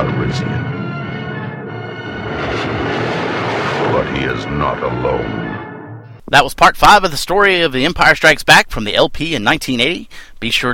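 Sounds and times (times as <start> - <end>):
spaceship engines starting up sound effect: 0.0 - 6.2
speech: 4.2 - 5.4, 6.3 - 10.7.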